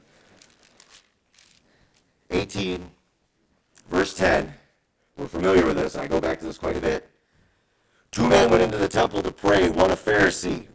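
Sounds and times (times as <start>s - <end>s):
thin Bible pages being turned: 0.1s - 2.0s
speech: 2.4s - 3.0s, 4.1s - 4.6s, 5.2s - 7.1s, 8.2s - 10.7s.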